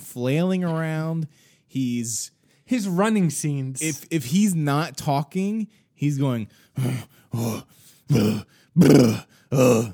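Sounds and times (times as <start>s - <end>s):
speech: 0.2s - 9.9s
man's voice imitating an actor's grunting in a movie: 6.8s - 9.9s.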